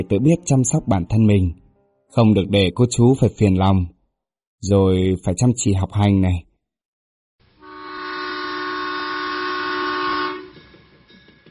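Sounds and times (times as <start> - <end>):
speech: 0.0 - 4.0, 4.6 - 6.5
departing train horn blast: 7.6 - 10.6
departing train low rolling rumble: 10.3 - 11.5.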